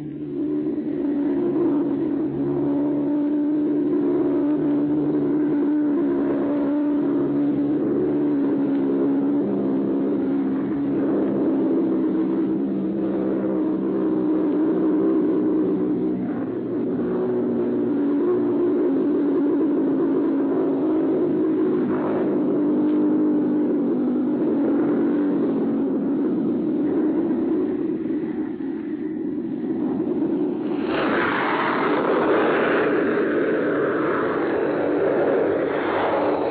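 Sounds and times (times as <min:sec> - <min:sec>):
robot bomb pulsejet engine in flight in southern England: 0:00.0 - 0:36.4.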